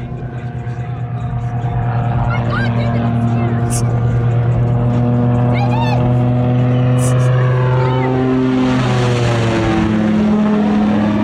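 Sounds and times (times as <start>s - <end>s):
boat engine rumbling: 0.0s - 11.2s
low-flying propeller plane buzzing over a boat: 0.0s - 11.2s.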